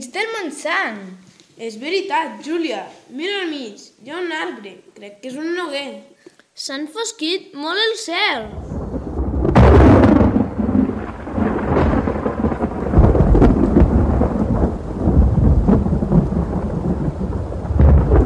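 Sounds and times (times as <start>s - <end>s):
speech: 0.2s - 8.8s
steady rain pouring: 8.4s - 18.2s
sharp loud thunderclap: 8.5s - 18.2s.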